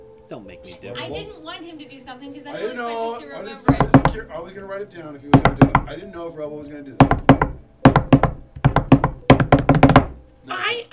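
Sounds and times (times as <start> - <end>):
speech: 0.3 - 7.2
knocking on a hard surface: 3.7 - 4.3, 5.3 - 6.0, 7.0 - 10.2.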